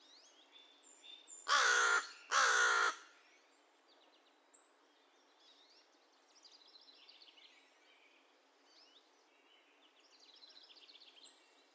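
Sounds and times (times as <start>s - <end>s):
American crow uttering raspy caws: 1.5s - 3.1s.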